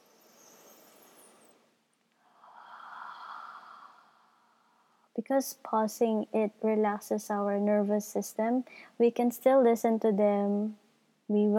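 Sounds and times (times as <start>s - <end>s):
deep cleansing breath, inhaling and exhaling: 2.2s - 5.1s, 8.7s - 9.0s
speech: 5.2s - 11.5s.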